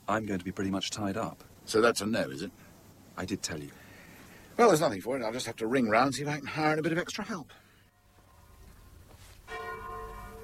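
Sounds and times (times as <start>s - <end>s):
speech: 0.1s - 3.8s, 4.6s - 7.6s
church bell striking: 9.4s - 10.4s.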